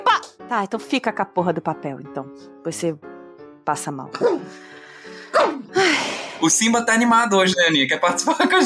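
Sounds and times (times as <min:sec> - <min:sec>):
speech: 0:00.2 - 0:04.8, 0:05.4 - 0:08.6
pet dog barking while trying to bite its owner: 0:04.2 - 0:04.5.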